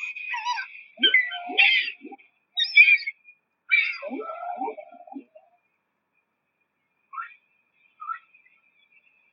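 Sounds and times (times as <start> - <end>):
whale calls: 0.0 - 5.6.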